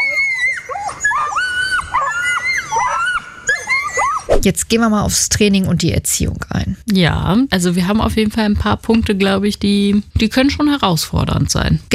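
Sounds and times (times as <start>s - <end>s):
Toller dog screaming: 0.0s - 4.4s
speech: 4.4s - 11.9s.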